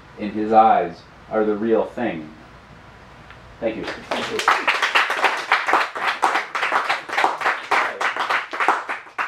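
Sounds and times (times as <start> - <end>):
speech: 0.2 - 2.4, 3.6 - 4.8
crowd applause: 3.8 - 9.2.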